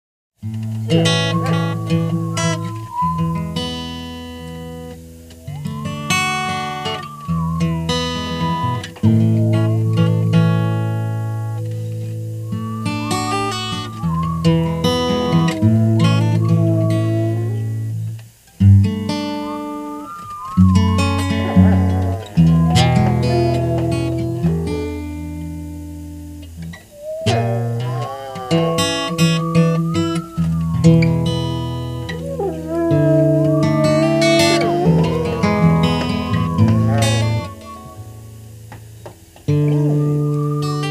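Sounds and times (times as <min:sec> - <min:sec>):
porch whistle: 0:00.9 - 0:18.0, 0:18.8 - 0:25.4, 0:26.6 - 0:40.9.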